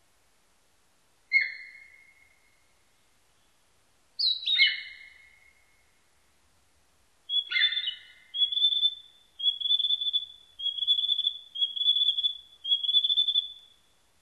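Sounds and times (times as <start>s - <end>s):
Narcissus flycatcher whistled phrases: 7.3s - 13.6s.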